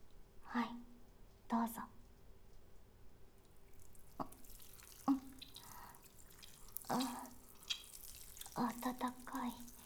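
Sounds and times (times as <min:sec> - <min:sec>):
speech: 0:00.5 - 0:00.9, 0:01.5 - 0:01.9, 0:08.9 - 0:09.7
water splashing and dripping simulating urination: 0:03.7 - 0:09.8.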